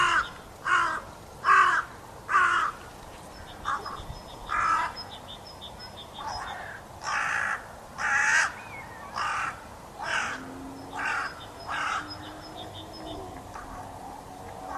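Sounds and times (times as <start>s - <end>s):
carrion crow Corvus corone cawing: 0.0s - 2.8s, 3.6s - 5.0s, 6.4s - 12.2s.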